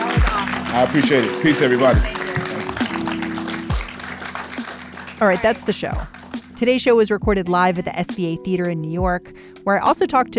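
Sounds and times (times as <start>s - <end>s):
live theater audience applause: 0.0s - 6.5s
speech: 0.8s - 2.2s, 5.2s - 10.3s.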